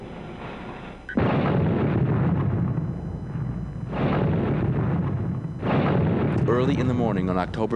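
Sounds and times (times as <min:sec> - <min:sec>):
roaring rumble of blasts and debris: 0:01.1 - 0:07.7
explosions ripping through the Los Angeles Times building: 0:01.2 - 0:07.6
speech: 0:06.6 - 0:07.7.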